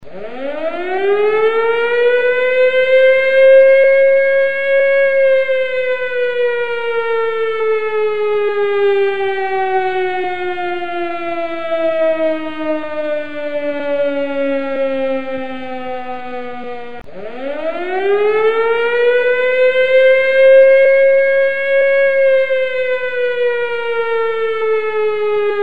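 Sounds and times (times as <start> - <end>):
triple air raid siren: 0.0 - 25.6.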